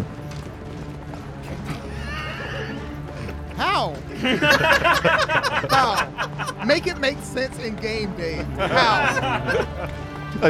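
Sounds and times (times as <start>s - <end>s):
horse pulling a wagon whinnying: 1.8s - 3.0s
laughter: 1.8s - 10.2s
speech: 3.8s - 10.4s.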